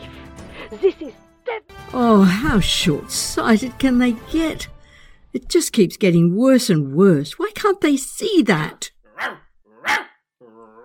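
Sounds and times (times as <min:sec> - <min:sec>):
speech: 0:00.7 - 0:10.1
dog barking: 0:09.1 - 0:10.2.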